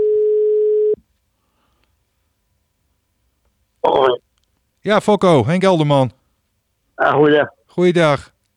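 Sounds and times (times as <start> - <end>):
telephone ringing tone on the line: 0.0 - 1.0
speech: 4.8 - 6.2, 7.0 - 8.3.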